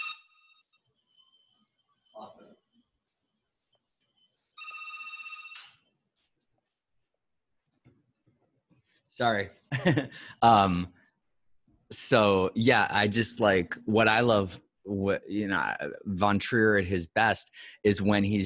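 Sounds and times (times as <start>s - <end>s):
telephone ringing with an electronic trill: 0.0s - 0.8s, 4.5s - 5.8s
speech: 9.2s - 11.0s, 11.9s - 18.4s.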